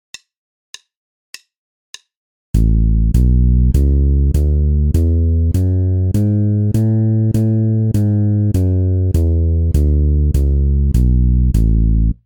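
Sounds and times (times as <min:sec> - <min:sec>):
bass playing A major scale exercise: 0:02.6 - 0:12.2.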